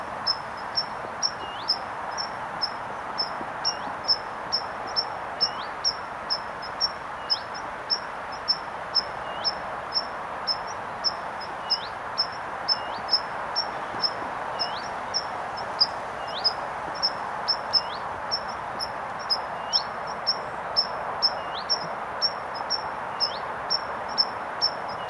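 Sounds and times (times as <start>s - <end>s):
tree pipit Anthus trivialis singing: 0.0s - 25.0s.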